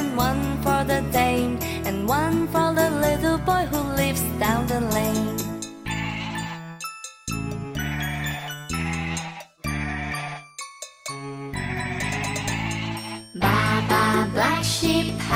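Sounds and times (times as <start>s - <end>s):
bright jingly music: 0.0s - 15.3s
sheep bleating: 7.8s - 10.4s, 11.8s - 14.0s.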